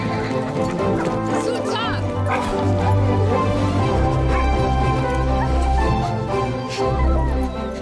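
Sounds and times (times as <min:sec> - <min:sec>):
several dogs barking and yelping excitedly: 0:00.0 - 0:07.8.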